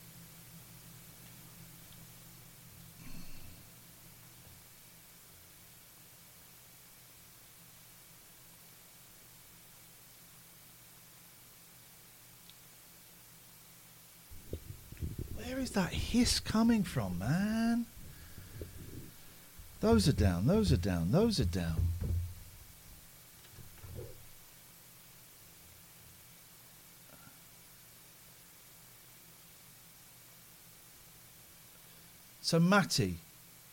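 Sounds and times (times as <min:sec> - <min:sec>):
faint broadband hiss: 0:00.0 - 0:33.7
low constant hum: 0:00.0 - 0:33.7
soft low thumps: 0:14.3 - 0:16.4, 0:17.9 - 0:23.0
speech: 0:15.4 - 0:18.0, 0:19.8 - 0:22.0, 0:32.5 - 0:33.3.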